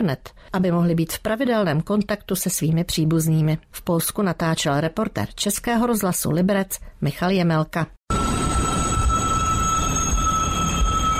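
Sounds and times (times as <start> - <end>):
speech: 0.0 - 8.4
high metallic squeal from train wheels: 8.1 - 11.1.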